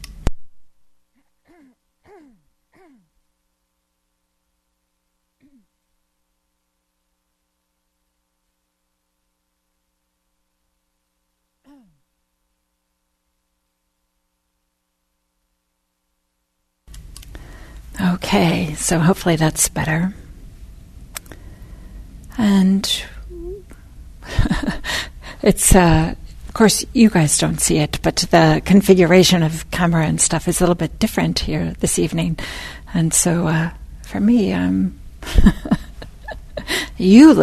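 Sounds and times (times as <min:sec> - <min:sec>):
person clearing throat before a guided meditation: 0:01.2 - 0:03.1, 0:05.4 - 0:05.7, 0:11.6 - 0:12.0
speech: 0:18.2 - 0:20.2, 0:22.4 - 0:23.1, 0:24.5 - 0:35.7, 0:36.6 - 0:37.4.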